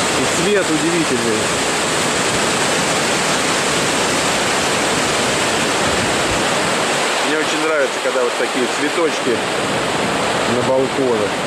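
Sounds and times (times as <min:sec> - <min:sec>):
loud steady rush of churning bubbling water: 0:00.0 - 0:11.4
speech: 0:00.4 - 0:01.8, 0:07.8 - 0:11.4.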